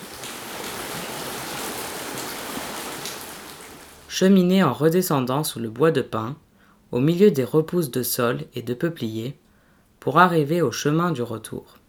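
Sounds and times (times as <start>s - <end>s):
stream water flowing over stones: 0.0s - 4.1s
speech: 4.1s - 9.4s, 10.0s - 11.8s.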